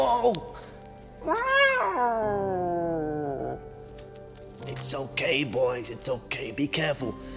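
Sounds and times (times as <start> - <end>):
speech: 0.2 - 0.6, 1.2 - 2.7, 4.6 - 7.3
cat yowling: 1.2 - 3.7.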